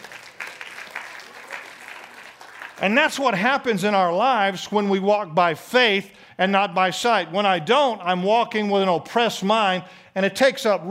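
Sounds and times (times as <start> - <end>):
audience clapping: 0.0 - 3.4
speech: 2.8 - 10.8.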